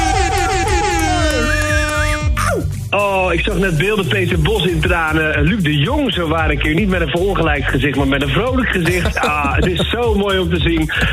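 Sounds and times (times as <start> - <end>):
air horn sound effect blaring to celebrate a football championship: 0.0 - 2.4
continuous dense backing: 0.0 - 11.1
speech: 3.3 - 11.1
laughter: 8.8 - 11.1.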